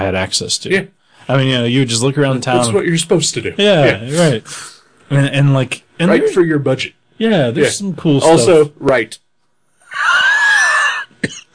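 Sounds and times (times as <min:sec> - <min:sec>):
speech: 0:00.0 - 0:09.2
strained wheezing: 0:09.8 - 0:11.5
short sharp cough: 0:11.2 - 0:11.5.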